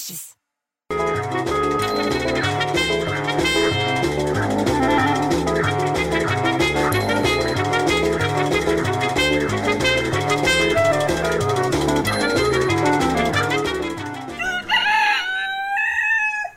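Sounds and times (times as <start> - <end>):
speech: 0.1 - 0.4
dense rhythmic sound: 0.9 - 14.9
rooster crowing: 14.3 - 16.5.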